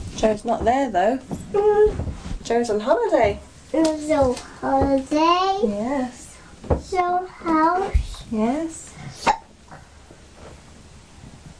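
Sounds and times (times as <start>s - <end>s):
speech: 0.2s - 9.3s
hiccups: 9.2s - 9.5s.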